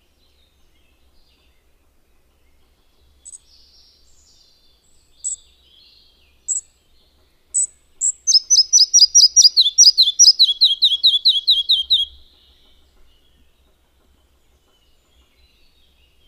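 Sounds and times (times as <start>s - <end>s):
Red-breasted flycatcher song: 3.0s - 5.7s, 7.5s - 12.3s.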